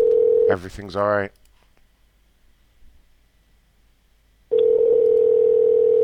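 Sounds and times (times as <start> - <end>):
telephone dial tone while placing a phone call: 0.0 - 0.5, 4.5 - 6.0
speech: 0.5 - 1.4.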